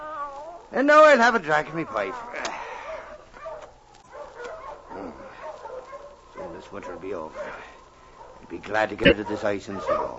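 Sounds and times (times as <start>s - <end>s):
speech: 0.7s - 2.5s, 6.6s - 7.7s, 8.5s - 10.1s
several dogs barking and yipping: 1.4s - 10.1s.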